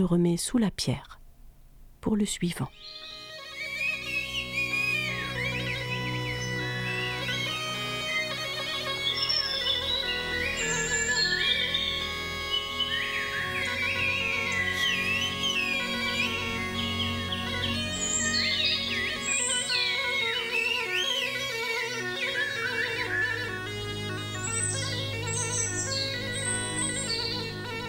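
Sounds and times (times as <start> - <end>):
speech: 0.0 - 1.2, 2.0 - 3.1
whistled language message in bird-like phrases: 2.0 - 2.9
steady droning musical backdrop: 2.8 - 27.8.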